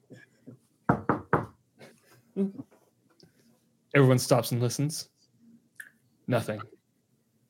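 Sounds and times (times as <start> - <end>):
loud sharp knocks on a door: 0.9 - 1.6
speech: 2.4 - 2.7, 3.9 - 5.1, 6.3 - 6.7.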